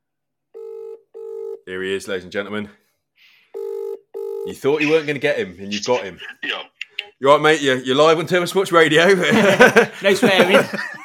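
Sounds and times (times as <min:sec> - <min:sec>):
electronic phone tone through a speakerphone: 0:00.6 - 0:01.6, 0:03.6 - 0:04.5
speech: 0:01.7 - 0:03.3, 0:04.4 - 0:11.0
laughter: 0:09.2 - 0:11.0.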